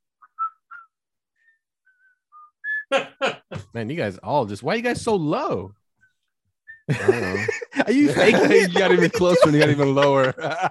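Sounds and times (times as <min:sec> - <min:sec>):
soft whistling of a short theme melody: 0:00.1 - 0:02.9, 0:06.0 - 0:06.9
speech: 0:03.7 - 0:05.8, 0:06.9 - 0:10.7
laughter: 0:06.9 - 0:10.7.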